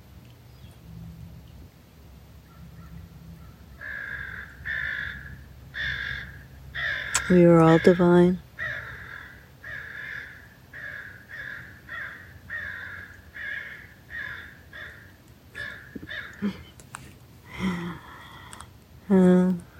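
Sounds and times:
crows cawing: 2.8s - 8.0s, 8.6s - 16.6s
speech: 7.3s - 8.4s.

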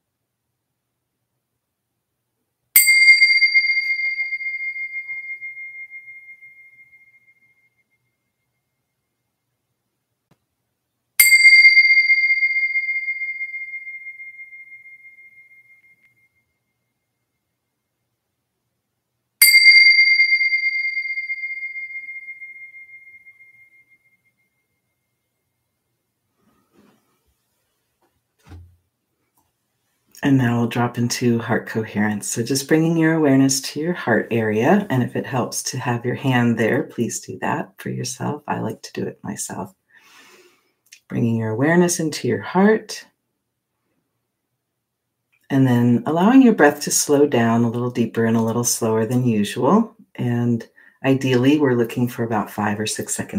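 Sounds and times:
bell strikes ringing: 2.8s - 7.2s, 11.2s - 16.2s, 19.4s - 24.0s
speech: 30.2s - 39.8s, 41.1s - 43.1s, 45.5s - 53.3s.

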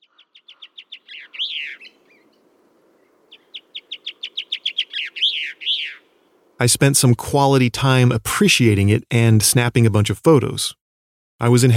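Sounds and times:
blue chaffinch singing in pine trees: 0.0s - 6.6s
speech: 6.6s - 10.8s, 11.4s - 11.7s.

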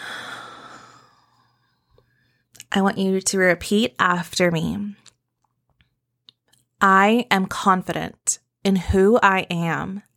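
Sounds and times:
long soft exhale after a deep breath: 0.0s - 1.7s
speech: 2.8s - 5.1s, 6.8s - 10.1s.

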